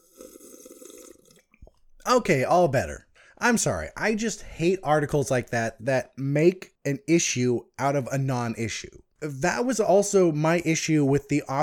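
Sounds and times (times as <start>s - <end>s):
sipping water: 0.0s - 2.2s
speech: 2.1s - 11.6s.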